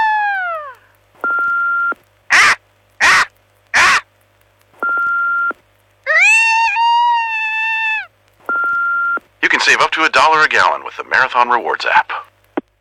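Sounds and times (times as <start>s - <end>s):
steady electronic beep tones: 1.2s - 2.0s, 4.8s - 5.6s, 8.5s - 9.2s
people imitating bald eagle calls: 2.3s - 4.1s, 6.1s - 8.1s
speech: 9.7s - 12.2s.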